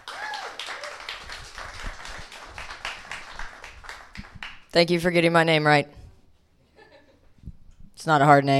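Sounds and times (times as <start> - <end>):
comedy audience applauding to welcome a comedian: 0.0 - 4.7
speech: 4.7 - 6.0, 8.0 - 8.5.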